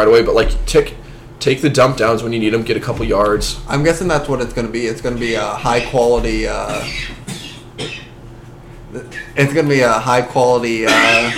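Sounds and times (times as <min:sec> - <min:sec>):
speech: 0:00.0 - 0:07.2, 0:07.8 - 0:08.0, 0:08.9 - 0:11.3
man coughing: 0:06.6 - 0:08.2.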